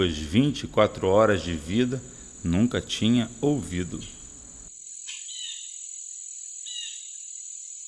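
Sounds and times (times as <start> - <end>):
speech: 0.0 - 4.2
steady high-pitched cricket trill at night: 0.0 - 7.8
brief chirping calls: 3.4 - 5.8, 6.6 - 7.3.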